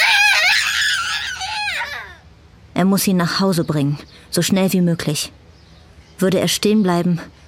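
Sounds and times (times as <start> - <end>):
child crying and screaming: 0.0 - 2.2
speech: 2.8 - 5.4, 6.2 - 7.4.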